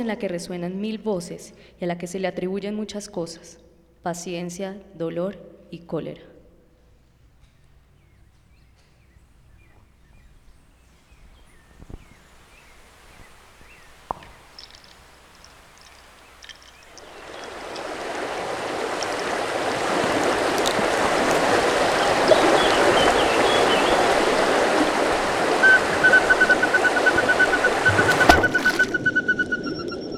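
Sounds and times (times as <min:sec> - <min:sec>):
speech: 0:00.0 - 0:06.3
faint scattered calls: 0:11.5 - 0:29.8
sea waves breaking: 0:12.2 - 0:30.1.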